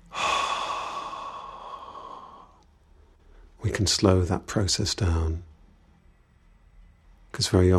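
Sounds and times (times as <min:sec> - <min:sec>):
long steady exhale of breath: 0:00.0 - 0:02.6
speech: 0:03.6 - 0:05.5, 0:07.4 - 0:07.7.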